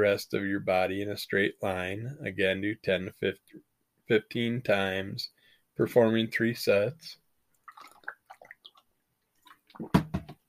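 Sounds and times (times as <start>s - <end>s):
speech: 0.0s - 7.2s, 9.8s - 10.0s
person sipping and slurping water without ice: 7.5s - 9.9s.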